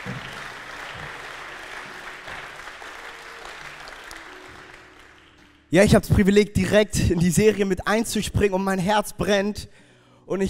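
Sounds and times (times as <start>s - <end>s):
audience applauding: 0.0s - 5.9s
speech: 5.7s - 10.4s.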